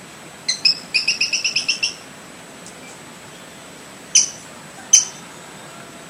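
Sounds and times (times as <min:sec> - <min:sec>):
brown-breasted pygmy-tyrant sharp emphatic ticks: 0:00.5 - 0:02.0, 0:04.2 - 0:04.4, 0:05.0 - 0:05.2.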